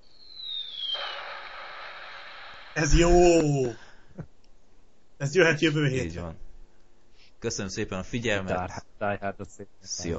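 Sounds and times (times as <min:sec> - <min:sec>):
high descending whistle of a cartoonish bomb drop: 0:00.0 - 0:03.7
speech: 0:02.8 - 0:04.3, 0:05.2 - 0:06.4, 0:07.4 - 0:10.1.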